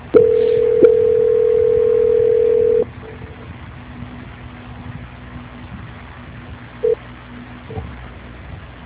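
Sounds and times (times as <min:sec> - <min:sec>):
telephone tone during a call transfer: 0:00.1 - 0:02.9.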